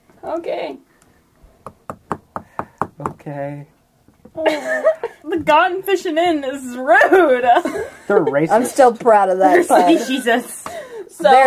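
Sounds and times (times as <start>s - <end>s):
speech: 0.2s - 0.9s, 3.0s - 3.8s, 4.4s - 11.4s
sharp knocks on a door: 1.6s - 3.3s
laughter: 4.4s - 5.3s, 7.0s - 8.8s, 9.4s - 10.8s.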